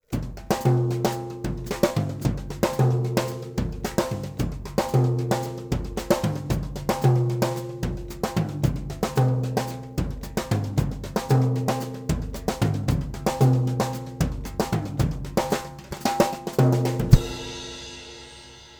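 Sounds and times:
drum kit snare drum played with rods: 0.0s - 18.7s.

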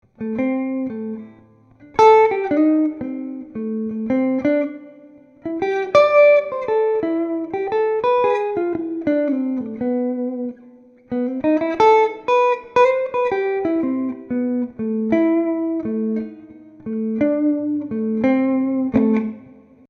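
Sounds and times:
clean coil-split electric guitar lick played on the neck pickup: 0.0s - 19.8s.

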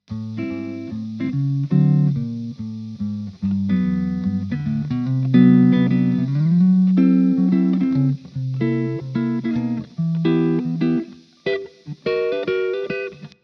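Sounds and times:
chord progression: 0.1s - 13.3s.

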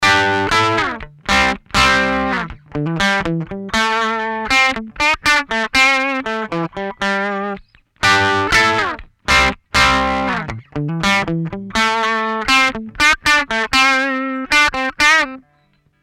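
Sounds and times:
clean electric guitar through amp loadbox with no cabinet: 0.0s - 15.8s.

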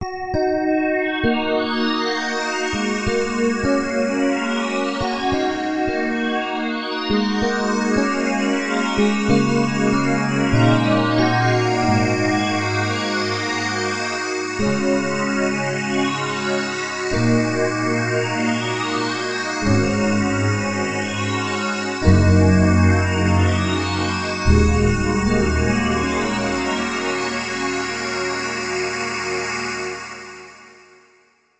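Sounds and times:
synthesizer pad: 0.9s - 30.8s.

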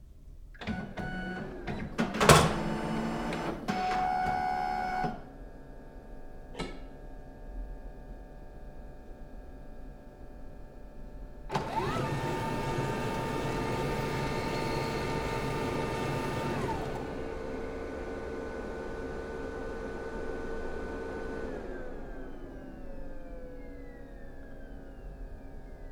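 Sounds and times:
laser printer printing: 1.0s - 5.2s, 11.5s - 25.8s.

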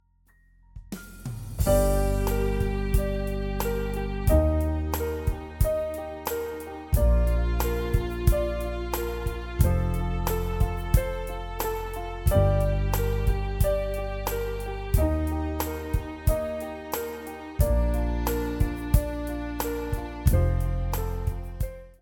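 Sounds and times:
acoustic ballad: 1.6s - 22.0s.

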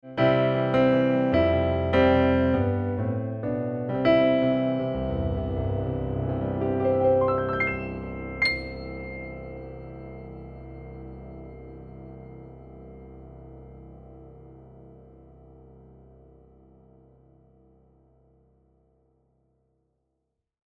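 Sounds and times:
digital piano with grand piano sound: 0.0s - 18.6s.

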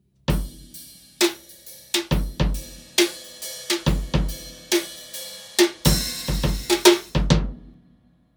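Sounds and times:
18-inch bass drum: 0.3s - 1.4s, 2.0s - 2.9s, 3.8s - 4.9s, 5.6s - 7.8s
8-inch snare drum: 0.3s - 7.7s.

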